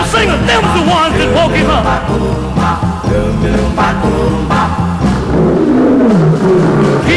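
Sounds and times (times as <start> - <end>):
speech: 0.2 - 7.1
lion roaring: 5.1 - 7.1.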